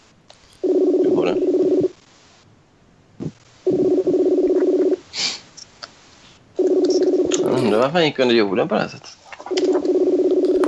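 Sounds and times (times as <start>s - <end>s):
telephone line dialing buzzing tone bursts: 0.6s - 2.0s, 3.7s - 5.0s, 6.6s - 7.8s, 9.4s - 10.6s
speech: 7.8s - 9.1s.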